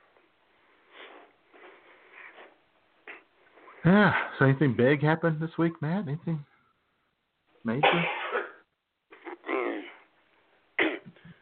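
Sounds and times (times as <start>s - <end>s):
speech: 3.8s - 6.5s, 7.6s - 8.2s
person coughing harshly: 7.8s - 8.6s, 10.8s - 11.3s.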